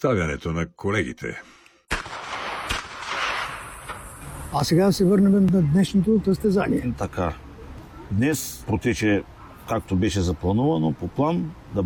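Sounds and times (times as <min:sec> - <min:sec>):
speech: 0:00.0 - 0:01.6, 0:04.5 - 0:07.4, 0:08.1 - 0:11.8
gunshots at a shooting competition: 0:01.9 - 0:04.6
continuous roar of noise: 0:01.9 - 0:11.8.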